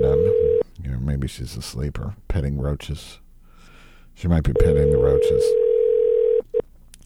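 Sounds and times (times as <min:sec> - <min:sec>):
telephone line tone: 0:00.0 - 0:00.6, 0:04.6 - 0:06.6
speech: 0:01.2 - 0:03.2, 0:04.2 - 0:05.6.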